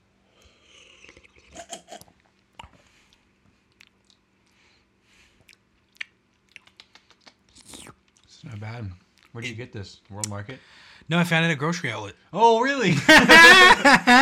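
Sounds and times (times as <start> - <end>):
person sipping and swallowing a milky beverage: 0.4 - 4.3, 5.4 - 8.3
speech: 8.4 - 14.2
laughter: 12.9 - 14.2.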